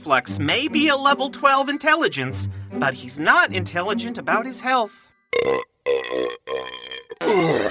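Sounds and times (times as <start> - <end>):
speech: 0.0 - 7.6
long loud croaking burp: 5.3 - 7.6.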